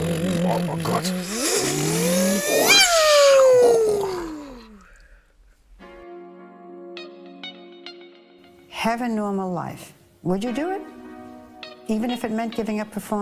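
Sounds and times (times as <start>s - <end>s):
engine revving with a rising wavering whine: 0.0s - 3.9s
steady humming tone: 0.0s - 4.9s
speech: 0.6s - 2.6s, 8.8s - 11.0s, 11.9s - 13.2s.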